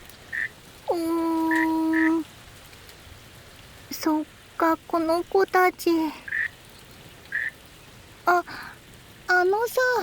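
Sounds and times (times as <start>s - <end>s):
soft hiss: 0.0s - 10.0s
frogs croaking: 0.2s - 2.3s, 6.1s - 8.0s
speech: 4.0s - 6.3s, 9.4s - 10.0s.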